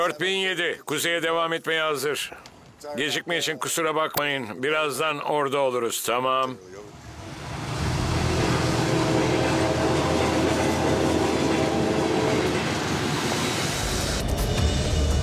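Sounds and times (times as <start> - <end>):
speech: 0.0 - 7.0
heavy gravel train rolling along the tracks: 7.1 - 15.2.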